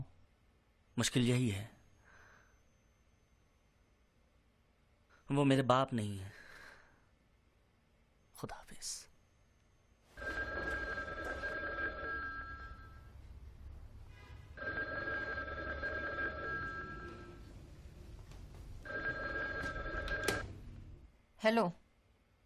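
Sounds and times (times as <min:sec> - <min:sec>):
faint room noise: 0:00.0 - 0:22.4
speech: 0:01.0 - 0:01.8, 0:05.3 - 0:06.4, 0:08.4 - 0:09.1, 0:21.4 - 0:21.8
telephone ringing with a steady electronic trill: 0:10.2 - 0:13.2, 0:14.6 - 0:17.6, 0:18.8 - 0:20.6.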